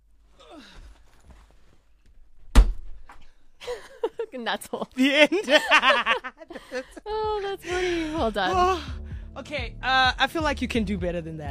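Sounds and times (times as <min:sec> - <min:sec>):
faint shuffling: 0:00.1 - 0:03.4
door slamming shut: 0:02.5 - 0:03.1
speech: 0:04.3 - 0:11.4
laughter: 0:05.0 - 0:08.8.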